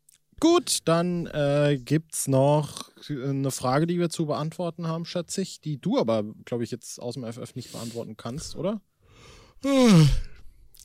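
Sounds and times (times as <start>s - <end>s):
speech: 0.4s - 8.9s, 9.6s - 10.3s
person yawning: 9.6s - 10.4s.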